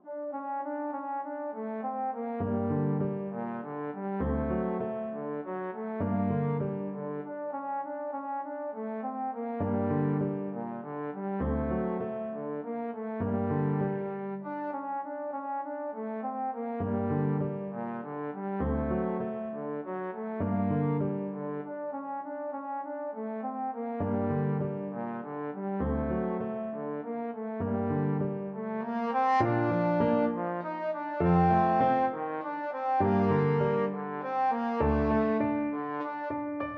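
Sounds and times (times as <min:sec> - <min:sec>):
trombone playing a classical piano piece: 0:00.0 - 0:36.7.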